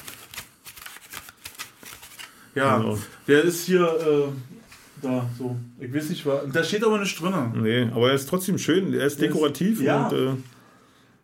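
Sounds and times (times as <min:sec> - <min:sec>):
folded paper fortune teller snapping open and shut: 0:00.0 - 0:02.3
speech: 0:02.6 - 0:10.5.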